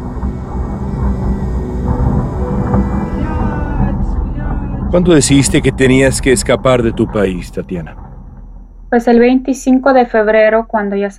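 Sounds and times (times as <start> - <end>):
several airplanes flying overhead: 0.0 - 7.9
speech: 4.9 - 8.0, 8.9 - 11.1.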